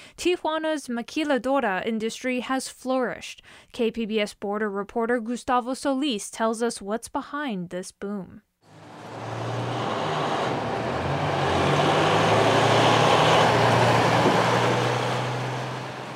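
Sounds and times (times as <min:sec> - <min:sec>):
speech: 0:00.2 - 0:08.5
heavy cargo truck traffic at a border crossing: 0:08.7 - 0:16.1.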